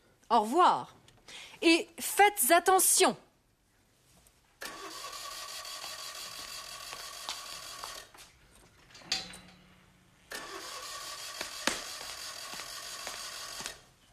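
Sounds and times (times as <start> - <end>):
speech: 0.3 - 3.2
car engine starting: 4.6 - 5.3, 10.3 - 11.1.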